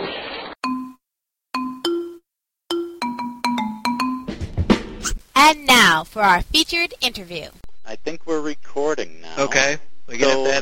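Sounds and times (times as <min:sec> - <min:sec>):
cell phone ringtone with bright electronic melody: 0:00.6 - 0:01.0, 0:01.6 - 0:04.3
speech: 0:05.5 - 0:10.6.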